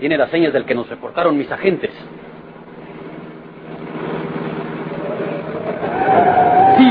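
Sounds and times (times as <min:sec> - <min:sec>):
speech: 0:00.0 - 0:02.2
car engine humming: 0:00.0 - 0:06.8
rising tonal whine: 0:03.6 - 0:06.8.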